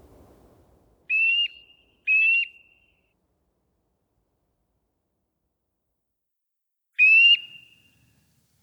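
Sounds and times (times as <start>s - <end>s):
Eurasian nuthatch giving clear ringing whistled notes: 1.1s - 3.0s, 7.0s - 8.1s.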